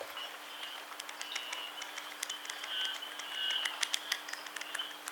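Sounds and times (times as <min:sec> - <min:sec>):
oilbird calls: 0:00.1 - 0:05.0.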